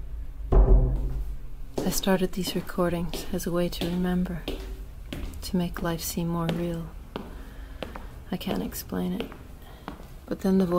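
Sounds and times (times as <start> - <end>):
door swinging shut with a heavy thud: 0.5 - 1.4
speech: 1.9 - 4.6, 5.5 - 7.0, 8.3 - 9.4, 10.3 - 10.7.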